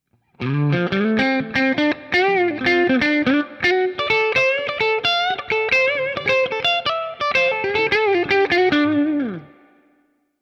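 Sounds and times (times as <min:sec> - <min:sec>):
Cort SP90 guitar solo: 0:00.3 - 0:10.1.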